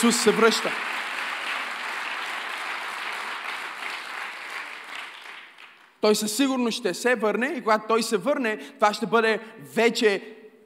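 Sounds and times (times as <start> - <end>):
speech: 0.0 - 1.0, 6.0 - 10.6
crowd applauding: 0.0 - 6.0.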